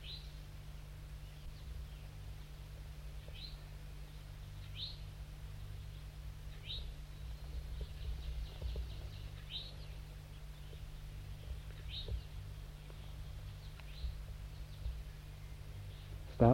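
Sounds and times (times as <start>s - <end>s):
steady low hum: 0.0s - 16.5s
juvenile wild bird giving short high thin call notes: 3.1s - 16.3s
speech: 16.4s - 16.5s.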